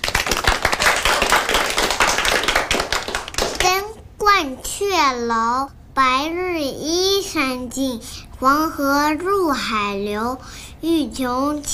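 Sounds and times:
crowd applauding: 0.0s - 3.7s
speech: 4.4s - 11.7s.

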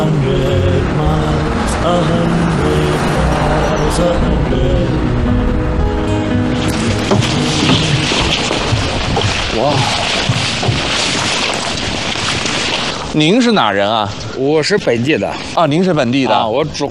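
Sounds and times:
passing cars heading out of the city: 0.0s - 9.2s
bus engine drone: 0.0s - 12.2s
road rumble of morning city traffic heard from inside a moving bus: 0.0s - 15.4s
speech: 13.2s - 16.8s.

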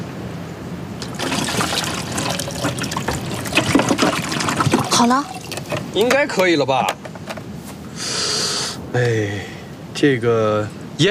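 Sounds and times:
water poured in to fill a container: 1.0s - 5.9s
speech: 5.0s - 5.3s, 5.9s - 7.0s, 8.9s - 9.5s, 10.0s - 11.0s.

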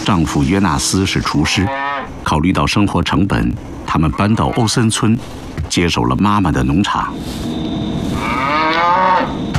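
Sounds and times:
speech: 0.1s - 7.6s
dairy cow mooing: 1.5s - 2.1s, 8.1s - 9.4s.

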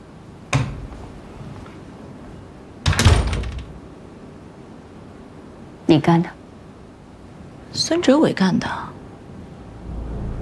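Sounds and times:
door being closed: 2.8s - 3.7s
speech: 5.9s - 6.4s, 7.7s - 8.9s.

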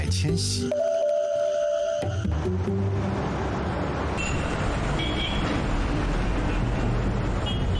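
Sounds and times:
heavy traffic on a busy city arterial road: 0.0s - 7.7s
speech: 0.1s - 0.9s, 2.4s - 3.1s
vehicles rumbling past: 2.0s - 7.7s.

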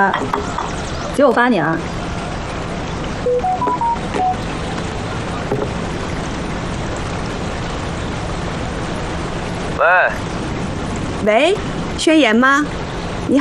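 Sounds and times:
speech: 0.0s - 2.0s, 9.8s - 10.4s, 11.2s - 13.3s
steady rushing noise: 0.0s - 13.3s
phone keypad beeps dialing a number: 3.3s - 4.4s
telephone ringing tone: 3.3s - 4.4s.

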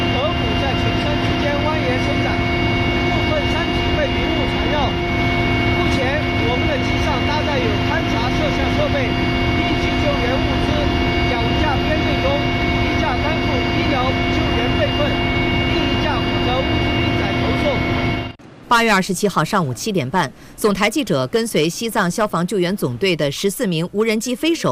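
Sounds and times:
army aviation helicopter engine roar heard from inside the cabin: 0.0s - 18.5s
person talking: 3.1s - 5.0s, 5.8s - 17.8s, 18.7s - 24.7s.

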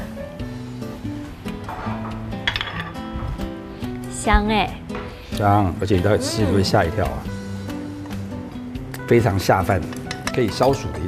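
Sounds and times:
music: 0.0s - 11.0s
metal clinking and scraping on dish as cooked shrimp are scooped from wok: 1.8s - 3.0s, 9.8s - 10.9s
speech: 4.2s - 7.4s, 9.1s - 11.0s.

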